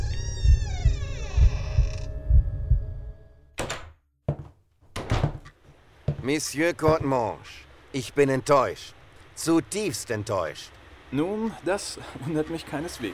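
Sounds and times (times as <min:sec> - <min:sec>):
drawn-out groaning creak: 0:00.0 - 0:02.5
low rumbling thumps: 0:00.0 - 0:03.2
sharp loud knocks or clunks: 0:03.6 - 0:07.2
speech: 0:06.3 - 0:13.1.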